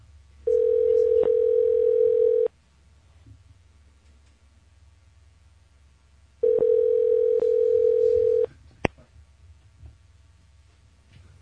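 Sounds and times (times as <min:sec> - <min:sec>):
faint low hum: 0:00.0 - 0:11.3
ringback tones through a phone line on an outgoing call: 0:00.5 - 0:02.5, 0:06.4 - 0:08.5.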